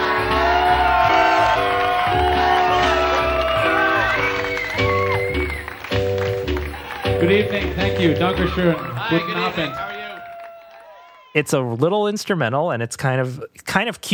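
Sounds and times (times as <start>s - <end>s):
band music: 0.0s - 10.2s
loud audience cheering whooping and applauding: 0.0s - 11.7s
speech: 7.2s - 9.9s, 11.4s - 14.1s.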